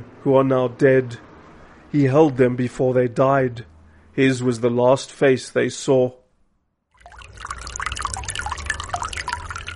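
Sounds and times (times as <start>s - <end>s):
speech: 0.2s - 1.3s, 1.9s - 6.2s
water bubbling from a small fountain in an office: 7.0s - 9.7s.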